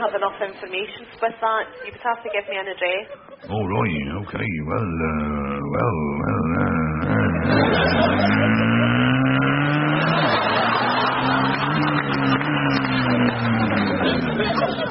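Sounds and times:
speech: 0:00.0 - 0:09.2
laughter: 0:00.0 - 0:14.8
voice imitating a revving motorbike engine: 0:03.4 - 0:14.8.

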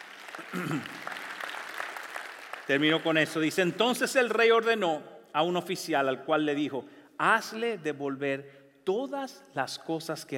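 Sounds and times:
audience applauding: 0:00.0 - 0:03.7
speech: 0:00.4 - 0:01.1, 0:02.7 - 0:10.3.

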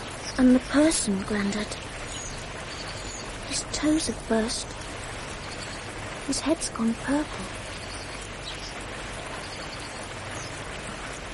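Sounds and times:
steady rain falling: 0:00.0 - 0:11.3
speech: 0:00.4 - 0:01.9, 0:03.5 - 0:04.8, 0:06.3 - 0:07.6.

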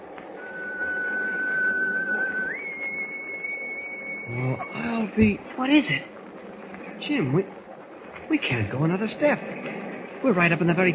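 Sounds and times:
low rushing noise: 0:00.0 - 0:10.9
shrill whistle blowing in fog: 0:00.3 - 0:05.2
speech: 0:04.3 - 0:06.1, 0:07.0 - 0:07.6, 0:08.3 - 0:10.9.

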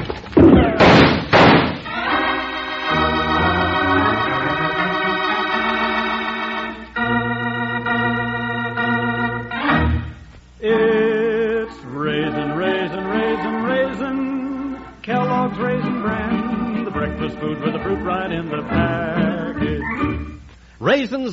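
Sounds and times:
door yanked open with banging thuds: 0:00.0 - 0:01.9
sustained musical passage: 0:01.8 - 0:20.5
speech: 0:20.8 - 0:21.3.

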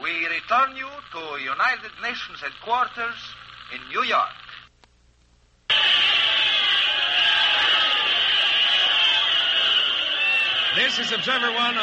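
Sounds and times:
speech: 0:00.2 - 0:04.4, 0:10.8 - 0:11.8
big crowd cheering and shouting: 0:05.7 - 0:11.8.

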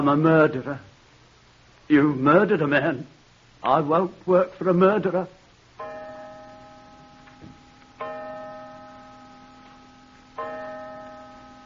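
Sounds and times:
speech: 0:00.0 - 0:00.9, 0:01.9 - 0:05.4
clock striking five o'clock with slow resonant bell-like chimes: 0:05.8 - 0:11.6.

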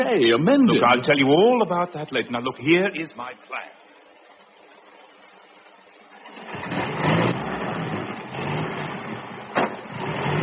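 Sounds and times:
speech: 0:00.0 - 0:03.8
10-ton army truck engine starting and driving off: 0:06.1 - 0:10.4
clunk: 0:09.5 - 0:10.0.

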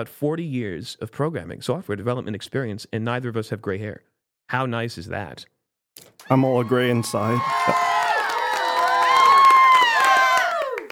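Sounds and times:
speech: 0:00.0 - 0:07.8
studio audience cheering and shouting: 0:06.2 - 0:10.9.

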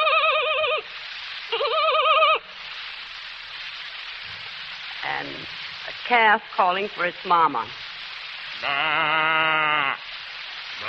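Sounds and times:
voice imitating a pony neighing: 0:00.0 - 0:00.9, 0:01.5 - 0:02.5, 0:08.6 - 0:10.1
soft breathy hiss: 0:00.0 - 0:10.8
speech: 0:05.2 - 0:07.8, 0:08.6 - 0:09.6.

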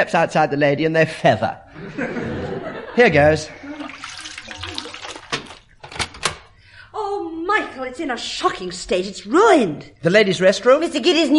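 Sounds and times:
speech: 0:00.0 - 0:02.4, 0:03.0 - 0:03.6, 0:07.9 - 0:11.3
laughter: 0:01.7 - 0:04.0
water wrung from a wet jacket splashing into a goldfish bowl: 0:03.5 - 0:05.8.

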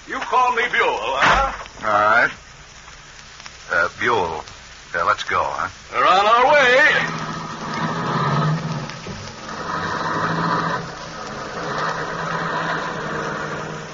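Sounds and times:
speech: 0:00.3 - 0:02.4, 0:04.0 - 0:07.3
rushing noisy wash: 0:05.9 - 0:13.9
car engine humming as the car drives off: 0:06.8 - 0:13.9.

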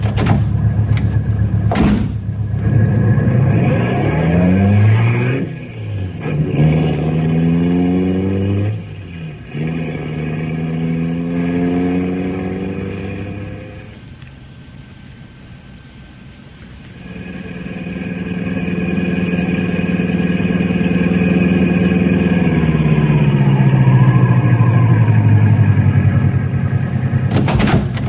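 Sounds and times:
sharp thump: 0:00.0 - 0:01.1, 0:01.7 - 0:02.3, 0:27.3 - 0:28.0
car engine starting and revving through gear shifts: 0:00.0 - 0:14.1, 0:16.8 - 0:28.0.

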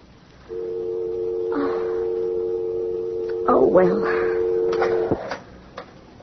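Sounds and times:
steady telephone dial tone: 0:00.5 - 0:05.4
speech: 0:03.7 - 0:04.2.

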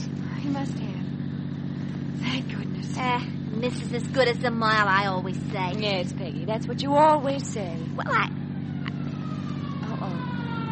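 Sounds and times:
vehicle engine rumble: 0:00.0 - 0:10.7
speech: 0:00.5 - 0:01.1, 0:02.8 - 0:08.4
emergency siren wailing: 0:08.0 - 0:10.7.

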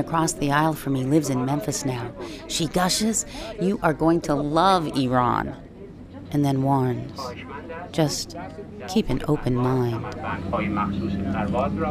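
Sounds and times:
speech: 0:00.0 - 0:05.7, 0:06.3 - 0:11.8
airplane engine drone inside the cabin on a flight to Iran: 0:03.2 - 0:11.8.

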